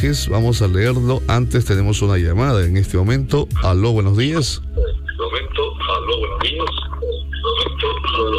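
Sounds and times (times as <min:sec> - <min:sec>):
speech: 0:00.0 - 0:04.8
radio broadcast voices in the background of a phone call: 0:04.7 - 0:08.3.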